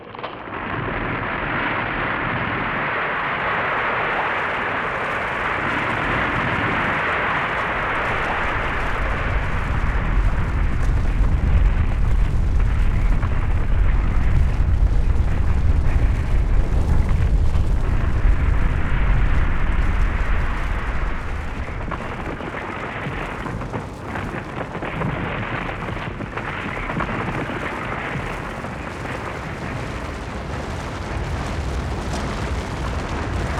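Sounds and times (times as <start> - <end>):
avalanche: 0.0 - 33.5.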